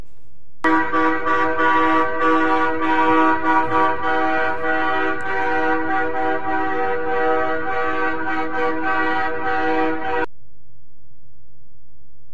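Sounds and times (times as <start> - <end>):
many truck and car horns honking from a huge trucker convoy in Ottawa: 0.6 - 10.3.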